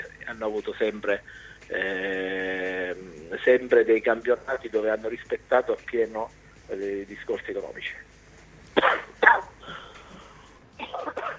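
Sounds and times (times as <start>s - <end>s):
speech: 0.3s - 8.1s
person coughing: 8.8s - 9.8s, 10.8s - 11.3s.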